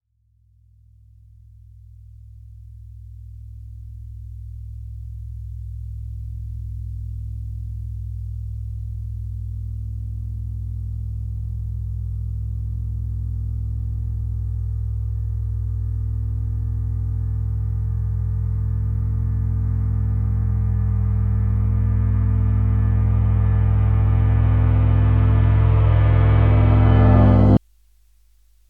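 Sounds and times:
reversed cymbal: 0:09.9 - 0:27.6.

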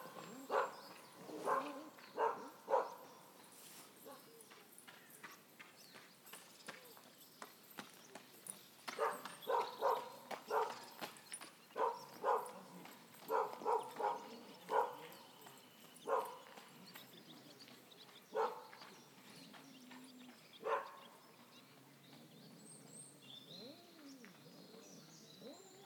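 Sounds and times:
dog barking in forest: 0:00.0 - 0:03.1, 0:09.0 - 0:10.9, 0:11.8 - 0:15.2, 0:16.0 - 0:16.6, 0:18.3 - 0:18.8, 0:20.6 - 0:21.1.

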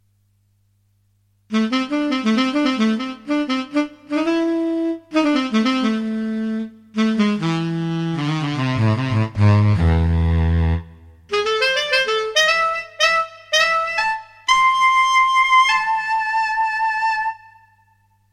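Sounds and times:
bright breathy saxophone: 0:01.5 - 0:18.2.

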